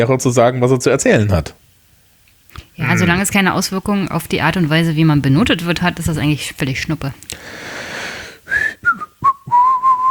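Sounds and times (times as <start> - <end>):
speech: 0.0 - 1.6, 2.8 - 7.8
person whistling a short wavering tune: 8.5 - 10.1.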